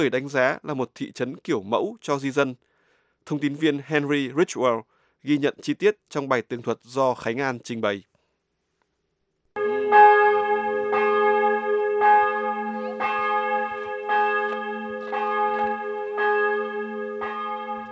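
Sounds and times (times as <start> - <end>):
speech: 0.0 - 8.1
church bells ringing: 9.6 - 17.9.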